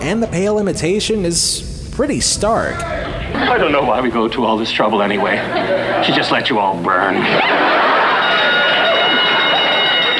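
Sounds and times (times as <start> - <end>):
speech: 0.0 - 7.8
laughter: 2.8 - 10.1
fire drill alarm ringing in a hotel lobby: 7.3 - 10.1.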